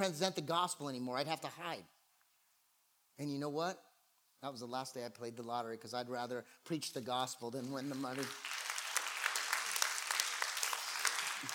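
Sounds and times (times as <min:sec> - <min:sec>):
speech: 0:00.0 - 0:02.0, 0:03.2 - 0:08.6
audience applause during a sermon: 0:07.8 - 0:11.5.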